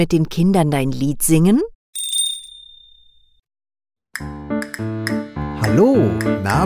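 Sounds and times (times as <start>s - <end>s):
speech: 0.0s - 1.7s, 4.2s - 4.4s, 5.7s - 6.6s
small bell struck and ringing: 2.0s - 3.4s.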